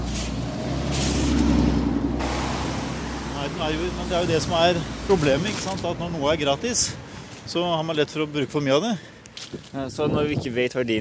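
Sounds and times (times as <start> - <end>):
bus passing by with low engine drone: 0.0 - 7.2
bus air brakes hissing: 2.2 - 5.2
speech: 3.6 - 10.9.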